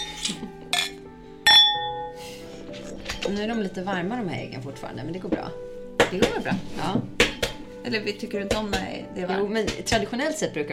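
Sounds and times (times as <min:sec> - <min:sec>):
glasses clinking together in an Easter toast: 0:00.0 - 0:02.2
speech: 0:03.2 - 0:07.2, 0:07.8 - 0:10.7.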